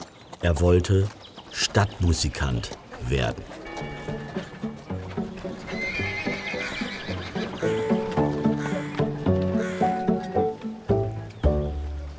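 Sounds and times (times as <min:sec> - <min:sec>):
hooves trotting in a clip-clop rhythm: 0:00.0 - 0:12.0
speech: 0:00.4 - 0:03.6
donkey braying: 0:03.3 - 0:10.6.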